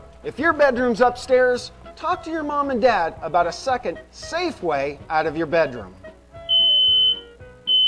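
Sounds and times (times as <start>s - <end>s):
speech: 0.2s - 6.0s
smoke detector alarm beeping: 6.4s - 7.8s.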